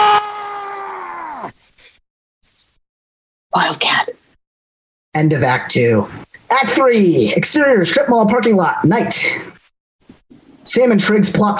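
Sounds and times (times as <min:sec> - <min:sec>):
man letting out a loud sustained yell: 0:00.0 - 0:01.5
short breath: 0:01.7 - 0:02.0
speech: 0:03.6 - 0:04.2, 0:05.2 - 0:09.6, 0:10.7 - 0:11.5.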